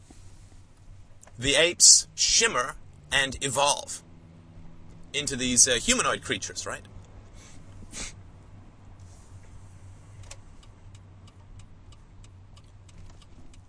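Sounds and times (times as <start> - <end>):
car engine rumble from inside a moving car: 0.0 - 13.6
road noise from inside a moving car: 0.0 - 13.6
car turn signal clicking: 0.1 - 1.4, 4.0 - 5.2, 8.6 - 13.6
speech: 1.4 - 4.1, 5.1 - 6.9.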